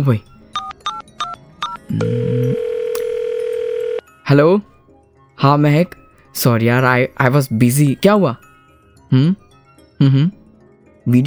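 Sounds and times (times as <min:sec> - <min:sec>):
speech: 0:00.0 - 0:00.4, 0:01.9 - 0:02.6, 0:04.3 - 0:04.7, 0:05.4 - 0:08.4, 0:09.1 - 0:09.4, 0:10.0 - 0:10.4
phone keypad beeps from dialing: 0:00.0 - 0:03.3
steady clear electronic phone ringback tone: 0:00.0 - 0:04.1.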